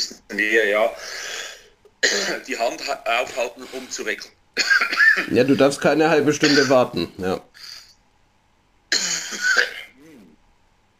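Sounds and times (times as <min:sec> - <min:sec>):
speech: 0:00.3 - 0:01.2, 0:02.1 - 0:07.7
harsh cough and throat clearing: 0:02.0 - 0:03.6, 0:04.6 - 0:05.3, 0:06.4 - 0:06.8, 0:08.9 - 0:10.4.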